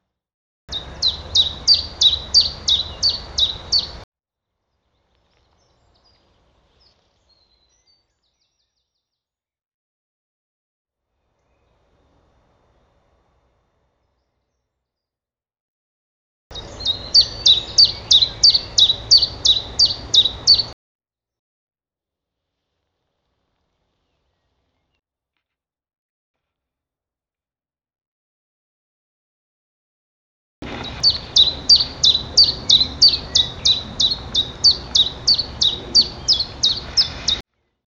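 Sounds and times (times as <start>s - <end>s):
Phylloscopus collybita singing: 0.7s - 4.0s, 16.5s - 20.8s, 30.7s - 37.4s.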